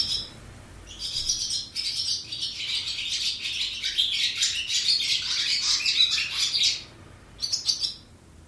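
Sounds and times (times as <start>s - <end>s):
Barn Swallow nest twittering in an old ice house on the west coast of Scotland: 0.0s - 8.2s.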